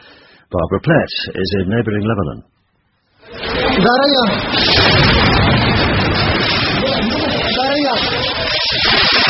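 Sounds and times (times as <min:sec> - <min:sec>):
speech: 0:00.5 - 0:02.5, 0:03.8 - 0:07.2
artillery shells exploding during a heavy army bombardment of a suburb in Syria: 0:03.4 - 0:09.2.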